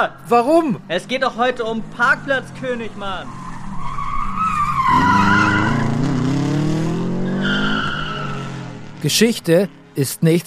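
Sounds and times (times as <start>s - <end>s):
speech: 0.0s - 3.4s, 9.0s - 10.4s
car engine rumble: 0.0s - 10.4s
car tires skidding and squealing on asphalt carving a crown shape: 1.8s - 9.0s.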